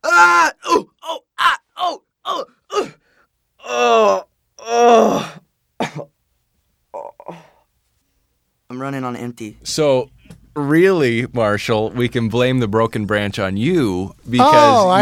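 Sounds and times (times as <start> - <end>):
person groaning with pained grunts and moans: 0.0 - 3.0, 3.6 - 5.4, 7.0 - 7.6
speech: 9.3 - 15.0.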